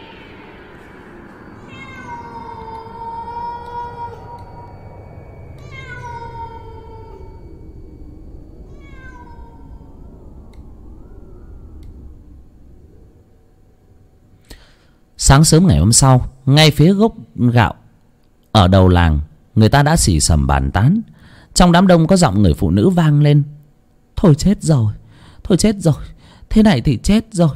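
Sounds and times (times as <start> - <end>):
steady hiss: 0.0 - 27.5
cat meowing mournfully at night: 1.6 - 4.8, 5.6 - 7.7, 8.7 - 10.4
speech: 15.3 - 17.8, 18.6 - 23.6, 24.2 - 27.5.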